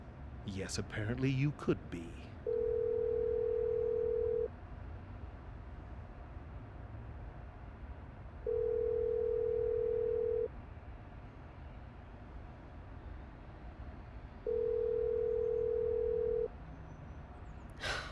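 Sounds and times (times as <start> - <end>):
speech: 0.4 - 2.3
unanswered phone call electronic ring tones: 2.5 - 4.5, 8.5 - 10.5, 14.5 - 16.5.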